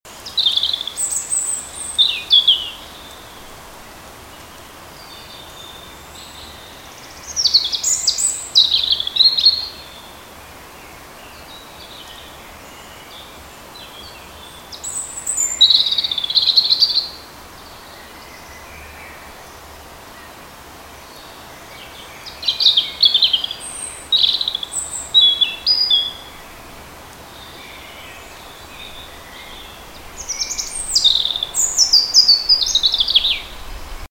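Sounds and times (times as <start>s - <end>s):
Erithacus rubecula in a hedge: 0.1s - 3.6s, 4.2s - 34.0s.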